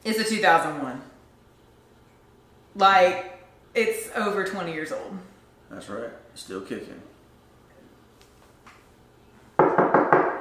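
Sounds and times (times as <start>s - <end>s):
speech: 0.0s - 1.1s, 2.8s - 7.1s
hollow knocks on a wooden surface: 9.6s - 10.3s.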